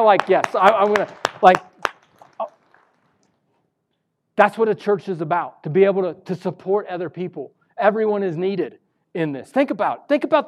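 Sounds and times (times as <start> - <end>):
speech: 0.0 - 1.7, 4.4 - 10.4
scattered claps from a group: 0.0 - 3.3.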